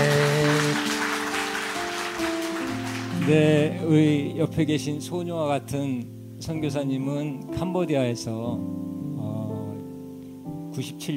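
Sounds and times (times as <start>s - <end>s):
audience applauding: 0.0s - 3.6s
speech: 3.3s - 8.8s, 10.8s - 11.1s.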